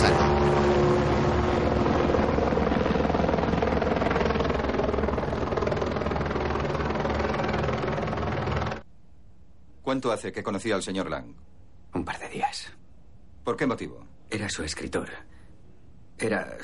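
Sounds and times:
police aircraft taking off with engine and rotor drone: 0:00.0 - 0:08.9
speech: 0:09.9 - 0:11.4, 0:12.0 - 0:12.8, 0:13.5 - 0:15.3, 0:16.2 - 0:16.6.

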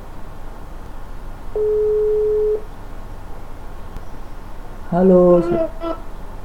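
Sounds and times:
low hiss: 0:00.0 - 0:06.4
telephone ringback tone: 0:01.6 - 0:02.6
speech: 0:04.9 - 0:06.1.

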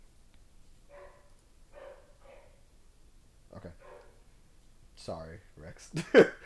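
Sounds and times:
steady low hum: 0:00.0 - 0:06.4
dog barking: 0:00.9 - 0:02.6, 0:03.8 - 0:04.2
speech: 0:05.0 - 0:06.4.

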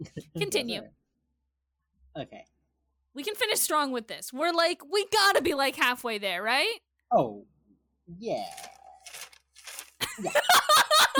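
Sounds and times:
speech: 0:00.1 - 0:01.0, 0:02.2 - 0:02.6, 0:03.2 - 0:07.5, 0:08.1 - 0:08.8, 0:10.2 - 0:11.1
pages being turned and shifted: 0:08.5 - 0:10.3
laughter: 0:10.0 - 0:11.1.

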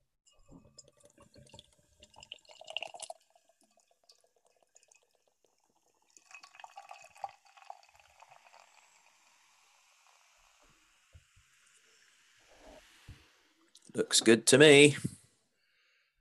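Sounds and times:
beer brewed with a New Zealand hop pouring into a glass: 0:00.4 - 0:11.4
speech: 0:14.0 - 0:15.1.

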